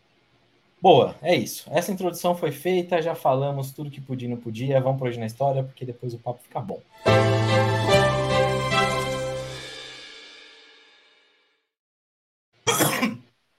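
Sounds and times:
speech: 0.8s - 7.8s
sustained musical tone: 7.0s - 10.1s
short rough cough: 12.7s - 13.3s.

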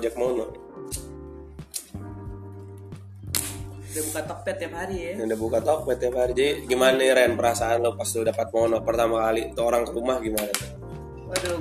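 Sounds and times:
speech: 0.0s - 1.0s, 4.0s - 11.5s
cigarette lighter being flicked: 0.9s - 2.0s, 3.3s - 3.7s.

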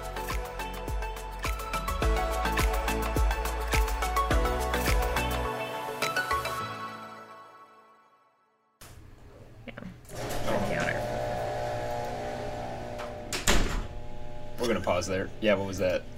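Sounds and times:
music: 0.0s - 8.8s
garage door rumbling and whirring: 10.1s - 14.3s
speech: 15.0s - 16.1s.

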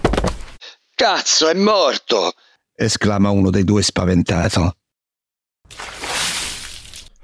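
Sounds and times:
speech: 1.0s - 4.8s
bucket of cold water splashing out: 5.7s - 7.2s.

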